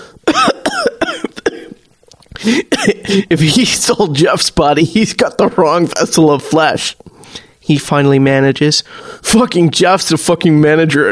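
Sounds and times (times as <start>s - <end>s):
faint breaths: 0.0s - 0.2s, 2.2s - 3.3s, 7.0s - 7.6s, 8.8s - 9.3s
person in a harsh hacking coughing fit: 0.2s - 1.8s, 2.4s - 3.3s
speech: 2.4s - 11.1s.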